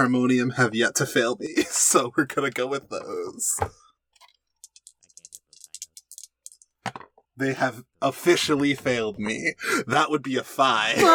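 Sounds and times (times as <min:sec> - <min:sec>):
speech: 0:00.0 - 0:03.8, 0:07.4 - 0:11.1
dice clattering across a hard surface: 0:04.6 - 0:07.2.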